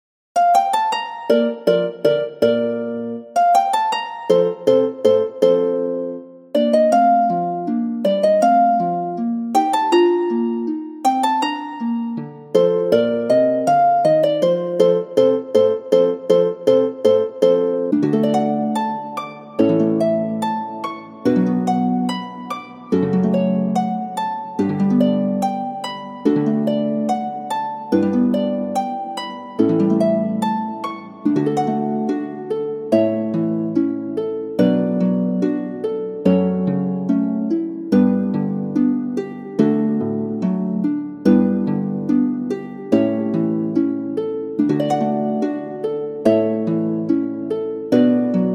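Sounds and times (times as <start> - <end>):
concert harp: 0.4 - 48.5.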